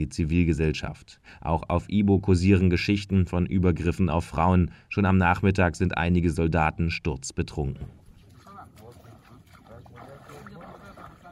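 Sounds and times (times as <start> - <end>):
speech: 0.0 - 8.0
boat rumbling across water: 7.8 - 11.2
splashing wash of a boat: 8.0 - 11.2.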